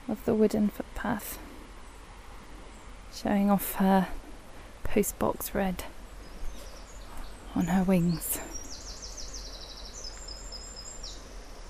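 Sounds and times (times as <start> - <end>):
steady low outdoor hum: 0.0 - 11.6
speech: 0.1 - 1.5, 3.1 - 4.2, 4.8 - 6.0, 7.6 - 8.5
wren singing rapid high-pitched trilling song: 4.9 - 11.6.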